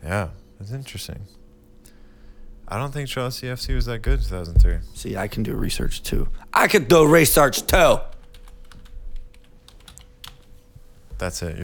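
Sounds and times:
speech: 0.0s - 1.4s, 2.7s - 8.1s, 11.2s - 11.6s
faint low hum: 0.0s - 11.6s
computer keyboard typing: 7.8s - 10.5s.

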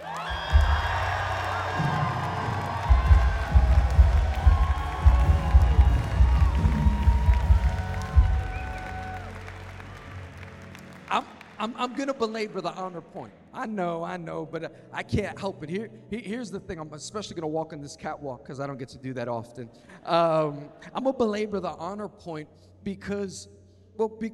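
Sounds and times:
large crowd cheering and shouting with whoops: 0.0s - 11.2s
large crowd applauding: 0.0s - 13.0s
speech: 11.6s - 24.3s.

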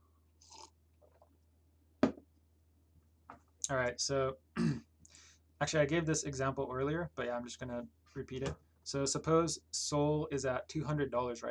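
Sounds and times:
person sipping a drink: 0.4s - 1.4s
speech: 3.7s - 4.8s, 5.6s - 11.4s.

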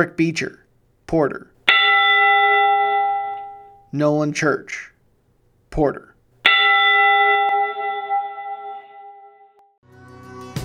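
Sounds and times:
speech: 0.0s - 1.5s, 3.9s - 4.9s, 5.7s - 6.1s
church bell tolling: 1.7s - 4.0s, 6.4s - 9.8s.

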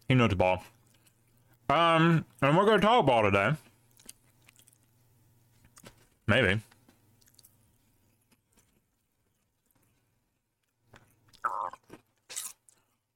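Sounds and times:
speech: 0.1s - 0.8s, 1.7s - 3.7s, 6.3s - 6.7s
chewing with wet squishy mouth sounds: 0.6s - 1.7s, 3.7s - 6.0s, 6.7s - 13.1s
crunchy bites: 10.9s - 13.1s.

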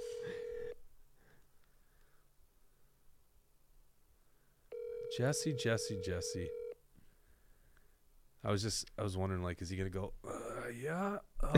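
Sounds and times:
phone line ringback tone in the earpiece: 0.0s - 0.8s, 4.7s - 6.8s
speech: 5.2s - 6.6s, 8.4s - 11.5s.

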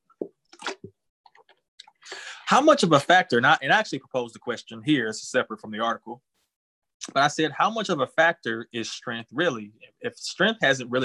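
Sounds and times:
person sipping water: 0.2s - 2.5s
speech: 2.5s - 6.3s, 7.1s - 11.0s.

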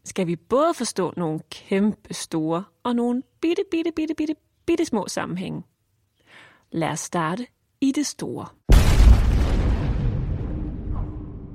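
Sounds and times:
speech: 0.1s - 5.7s, 6.7s - 8.7s
deep explosion boom for solar eruption: 8.7s - 11.5s.

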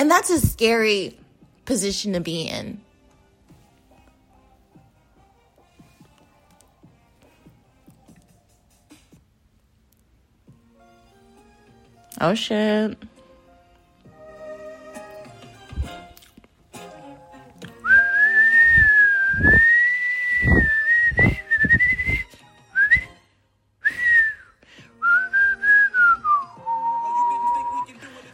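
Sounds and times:
speech: 0.0s - 2.8s, 12.2s - 13.1s
person whistling a wavering tune: 17.8s - 23.2s, 23.8s - 28.0s.

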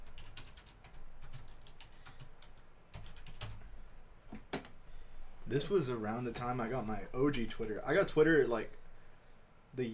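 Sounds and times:
typing on a computer keyboard to enter a search: 0.0s - 3.7s
speech: 5.5s - 8.8s, 9.8s - 9.9s.

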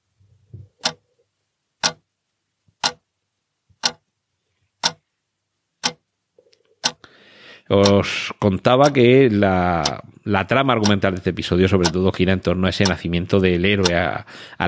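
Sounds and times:
clock ticking: 0.7s - 1.0s, 1.8s - 2.0s, 2.8s - 3.0s, 3.8s - 4.0s, 4.8s - 5.0s, 5.8s - 6.1s, 6.8s - 7.1s, 7.8s - 13.2s, 13.8s - 14.2s
speech: 7.7s - 14.6s.

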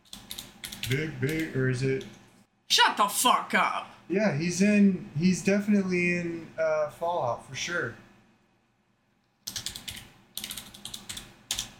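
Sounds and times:
typing on a computer keyboard: 0.0s - 2.2s, 9.4s - 11.7s
speech: 0.9s - 8.0s.

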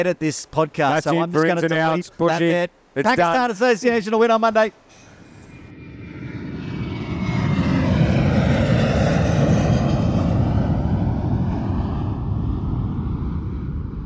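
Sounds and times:
speech: 0.0s - 5.0s
aeroplane roaring overhead with engine rumble and whine: 5.1s - 14.0s.

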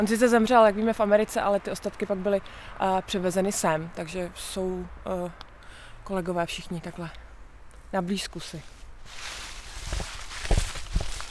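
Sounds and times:
speech: 0.0s - 5.4s, 6.0s - 7.2s, 7.9s - 10.0s
constant outdoor hiss: 0.0s - 11.2s
footsteps walking through a cemetery in a deep forest: 8.7s - 11.2s.

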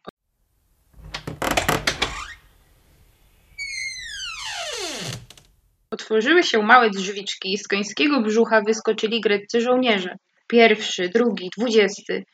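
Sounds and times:
wooden creaking from the belly of a huge horse: 0.7s - 5.8s
speech: 5.9s - 12.3s.

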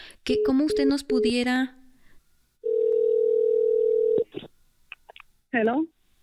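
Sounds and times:
speech: 0.2s - 1.8s, 5.5s - 6.0s
telephone dial tone after dropped call: 2.6s - 4.2s.

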